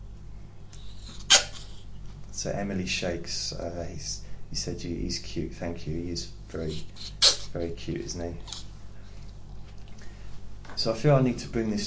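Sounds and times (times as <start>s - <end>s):
dog sneezing: 0.8s - 1.8s, 6.8s - 7.6s
speech: 2.4s - 8.6s, 10.8s - 11.8s.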